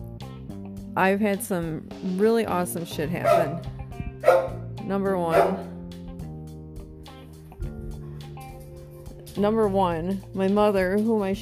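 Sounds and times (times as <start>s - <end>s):
speech: 1.0s - 5.7s, 9.4s - 11.4s
dog barking in loud strained bursts: 3.2s - 4.7s, 5.3s - 5.8s.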